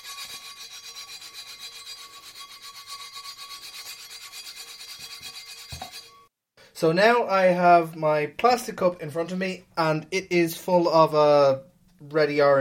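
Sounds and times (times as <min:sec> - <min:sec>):
old emery board nail file filing rust off the rim of an iron pot lid: 0:00.0 - 0:06.3
speech: 0:06.8 - 0:12.5.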